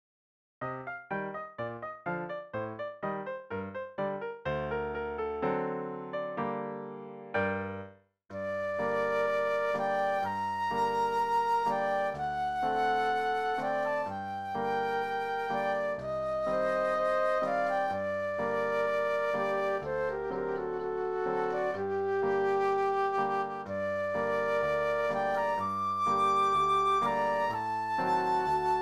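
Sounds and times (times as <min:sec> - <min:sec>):
piano in classical piece: 0:00.6 - 0:28.8
classical flute duet: 0:08.4 - 0:28.8.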